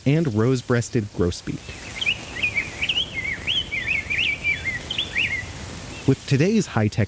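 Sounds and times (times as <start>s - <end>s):
speech: 0.0s - 1.9s, 6.1s - 7.0s
faint hiss: 0.0s - 7.0s
song sparrow singing: 1.6s - 6.3s.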